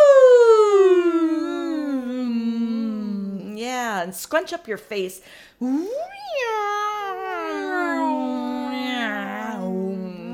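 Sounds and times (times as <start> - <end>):
person imitating a long cat meow: 0.0 - 3.5, 5.6 - 10.3
speech: 4.0 - 6.7.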